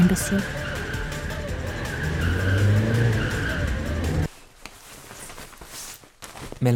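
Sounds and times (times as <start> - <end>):
speech: 0.1 - 0.6, 6.6 - 6.7
car tires squealing: 0.4 - 4.3.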